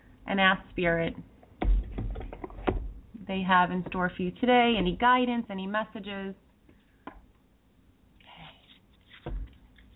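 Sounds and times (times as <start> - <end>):
speech: 0.3 - 1.3, 3.3 - 6.4
deck of cards being shuffled: 8.5 - 9.9.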